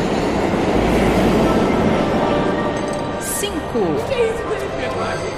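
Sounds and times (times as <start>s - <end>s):
train rumbling through a station: 0.0s - 5.2s.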